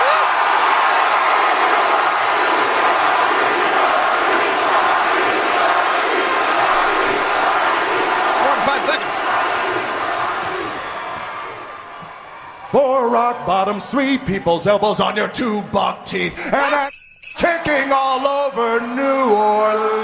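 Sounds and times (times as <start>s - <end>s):
packed arena crowd chanting a wrestler's name in unison: 0.0s - 12.3s
speech: 13.5s - 20.0s.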